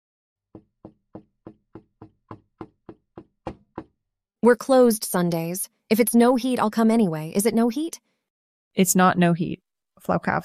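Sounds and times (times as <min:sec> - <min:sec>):
speech: 0:00.5 - 0:00.7, 0:04.4 - 0:08.1, 0:08.8 - 0:10.4
knocks on a kitchen door: 0:00.6 - 0:04.0.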